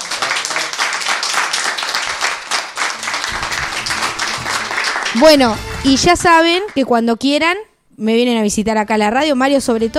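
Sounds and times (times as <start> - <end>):
lively applause from a gathering of older adults: 0.0 - 6.9
speech: 5.2 - 9.9.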